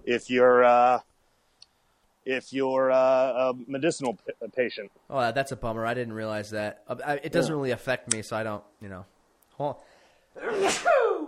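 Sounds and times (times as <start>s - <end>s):
speech: 0.1s - 1.1s, 2.3s - 11.1s
loud sneeze: 10.4s - 11.2s.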